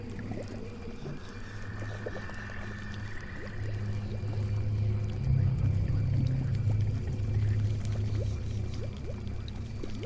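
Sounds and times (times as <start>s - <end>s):
low humming drone: 0.0s - 10.0s
faint thin whine: 0.1s - 10.0s.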